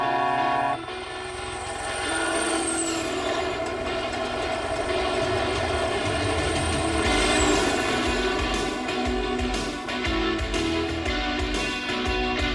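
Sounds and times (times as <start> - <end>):
helicopter engine and rotors roaring during takeoff: 0.2 - 12.4.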